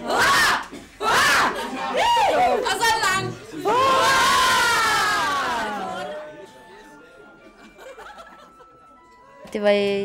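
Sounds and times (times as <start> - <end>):
group of guests shouting three cheers after a speech: 0.0 - 3.0, 3.6 - 6.2
laughter: 1.2 - 6.7, 7.3 - 9.0
speech: 9.5 - 10.0.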